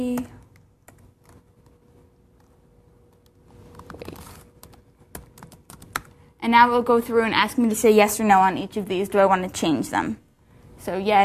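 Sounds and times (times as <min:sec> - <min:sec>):
typing on a computer keyboard: 0:00.2 - 0:01.8, 0:03.2 - 0:06.2
speech: 0:06.5 - 0:10.2, 0:10.8 - 0:11.2.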